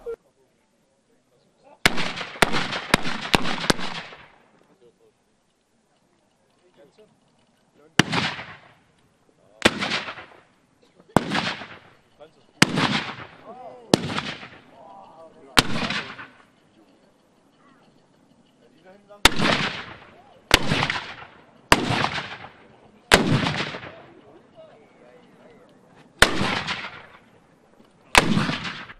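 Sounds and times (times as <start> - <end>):
black powder cannons firing: 1.8 - 4.5, 8.0 - 8.8, 9.6 - 10.5, 11.1 - 12.0, 12.6 - 14.8, 15.5 - 16.5, 19.2 - 24.2, 26.2 - 27.3, 28.1 - 28.9.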